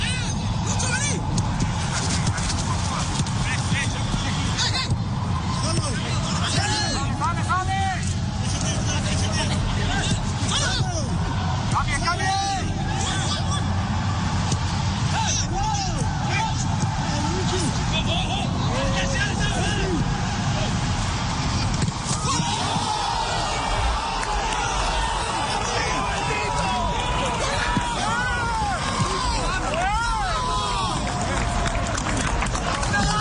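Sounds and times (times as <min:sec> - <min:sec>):
huge stadium crowd cheering after a goal: 0:00.0 - 0:33.2.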